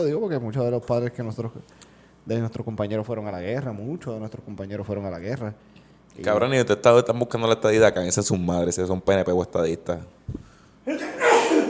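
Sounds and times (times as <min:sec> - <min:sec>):
speech: 0:00.0 - 0:11.0
person sneezing: 0:10.8 - 0:11.6.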